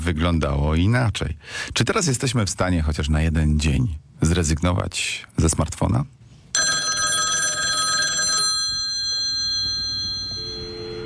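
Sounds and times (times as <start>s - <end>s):
speech: 0.1s - 6.7s
telephone bell ringing with a bright metallic trill: 6.6s - 11.0s
faint tone: 8.9s - 11.0s.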